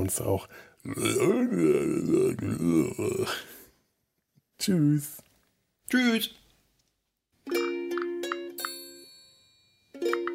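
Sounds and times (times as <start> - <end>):
speech: 0.0 - 3.6, 4.6 - 5.3, 5.9 - 6.4, 7.4 - 7.6
man grunting and croaking imitating an alligator person: 0.8 - 3.6.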